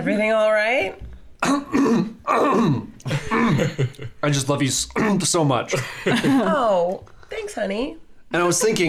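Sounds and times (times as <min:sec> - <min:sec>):
speech: 0:00.0 - 0:08.8
man coughing harshly: 0:01.4 - 0:04.0, 0:04.9 - 0:06.4.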